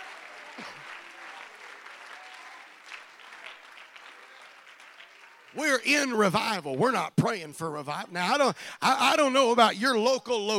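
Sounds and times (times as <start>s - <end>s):
audience clapping hands: 0.0s - 5.8s
speech: 0.6s - 0.8s, 5.5s - 10.5s.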